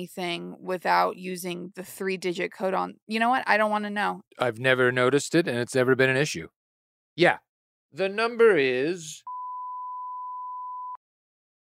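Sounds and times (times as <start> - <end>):
speech: 0.0 - 6.6, 7.2 - 9.3
censor beep over spoken credit card number: 9.2 - 11.0.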